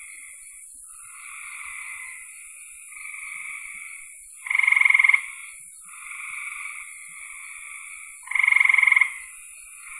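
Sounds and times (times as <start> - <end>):
frog giving fast pulsed trills: 4.4 - 5.3, 8.2 - 9.2.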